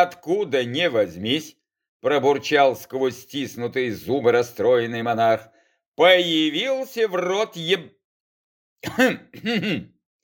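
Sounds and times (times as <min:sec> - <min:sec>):
speech: 0:00.0 - 0:08.0, 0:08.8 - 0:09.9
voice imitating a bodyguard coughing: 0:08.8 - 0:10.0.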